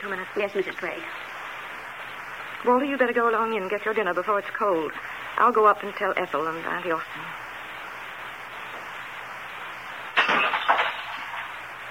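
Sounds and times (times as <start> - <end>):
speech: 0.1 - 1.3, 2.6 - 7.4
brittle ornament shattering: 10.1 - 11.5
ornament pieces scattering and settling: 10.1 - 11.5.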